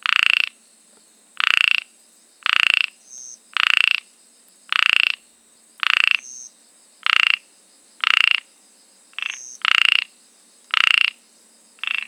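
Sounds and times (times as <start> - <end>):
ornate narrow-mouthed frog Microhyla ornata calling: 0.0 - 0.6, 1.4 - 4.1, 4.7 - 8.5, 9.1 - 11.2, 11.8 - 12.0.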